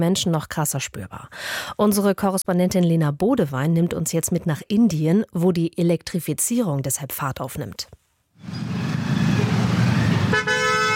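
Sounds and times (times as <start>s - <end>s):
speech: 0.0s - 8.7s
dense morning street traffic with two-wheelers in Delhi India: 8.4s - 10.9s
other honking horns: 9.0s - 10.9s
loud sustained car horn: 9.4s - 10.9s.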